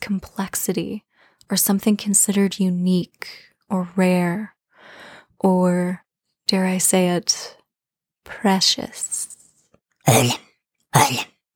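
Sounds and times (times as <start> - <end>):
speech: 0.1 - 4.6, 5.4 - 7.6, 8.2 - 9.3, 10.1 - 11.3
person clearing throat: 10.1 - 10.4, 11.0 - 11.3.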